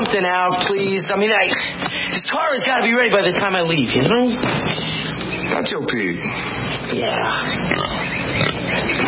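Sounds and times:
speech: 0:00.2 - 0:01.6, 0:02.4 - 0:04.8, 0:05.5 - 0:09.0
pig oinking: 0:06.8 - 0:09.0.

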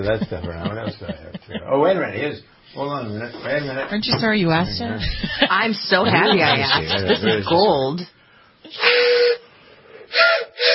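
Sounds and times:
laughter: 0:00.0 - 0:02.0, 0:04.9 - 0:07.8
speech: 0:00.0 - 0:09.3
toy train whistle being blown: 0:08.7 - 0:09.5, 0:10.1 - 0:10.7.

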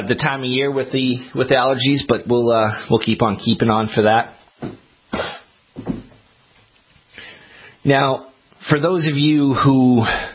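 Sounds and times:
speech: 0:00.0 - 0:05.3, 0:07.8 - 0:10.3
person with seasonal allergies clearing throat: 0:05.1 - 0:05.5.

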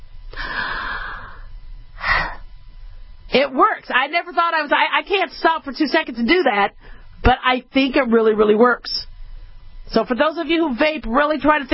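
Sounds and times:
deep breath in through the mouth and forceful exhale: 0:00.3 - 0:02.5
speech: 0:03.4 - 0:09.0, 0:09.9 - 0:11.7.

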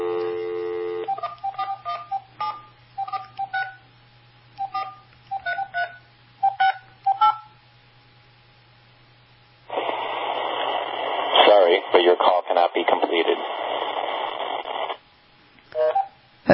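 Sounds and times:
touch-tone phone dialing beeps: 0:00.0 - 0:03.8, 0:04.6 - 0:07.4
faint hum: 0:00.0 - 0:16.5
tinny recorded voice on a phone line announcing call failure: 0:11.1 - 0:14.0.

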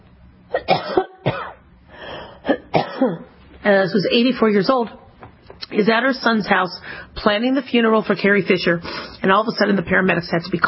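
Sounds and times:
person coughing harsh throaty bursts: 0:00.5 - 0:01.6, 0:02.2 - 0:03.4
speech: 0:03.0 - 0:05.0, 0:05.7 - 0:10.6.

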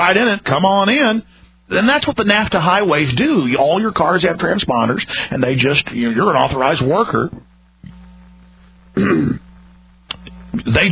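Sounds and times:
speech: 0:00.0 - 0:07.5, 0:09.0 - 0:09.4, 0:10.5 - 0:10.9
steady low hum: 0:00.0 - 0:10.9
person with a cold coughing or clearing throat: 0:09.0 - 0:09.5.

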